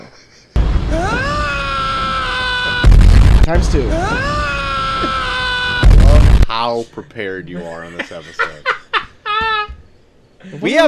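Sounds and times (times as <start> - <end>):
laughter: 0.0 - 1.2, 7.5 - 9.8
man's scream sound effect: 0.9 - 6.4
speech: 3.5 - 4.3, 6.5 - 8.7, 10.5 - 10.8.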